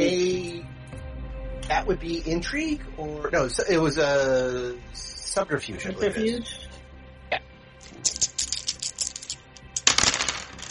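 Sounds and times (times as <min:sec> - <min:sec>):
speech: 0:01.7 - 0:08.2
dice rolling on a hard tabletop: 0:08.1 - 0:10.6.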